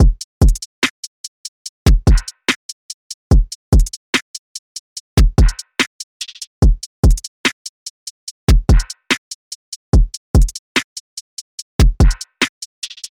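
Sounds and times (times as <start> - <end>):
dreamy drums: 0.0 - 0.7, 1.9 - 2.6, 3.3 - 4.0, 5.2 - 7.5, 8.4 - 9.3, 10.0 - 10.6, 11.8 - 13.1.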